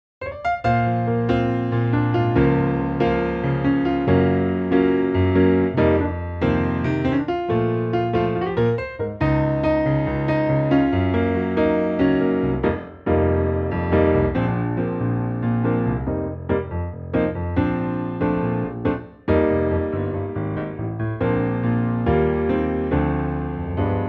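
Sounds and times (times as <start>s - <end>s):
piano playing B flat: 0.2s - 24.0s.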